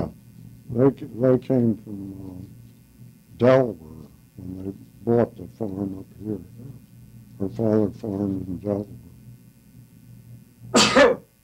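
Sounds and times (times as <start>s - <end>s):
faint low hum: 0.0s - 11.4s
speech: 0.7s - 2.6s, 3.4s - 6.8s, 7.4s - 9.0s
single sharp sneeze: 10.8s - 11.3s.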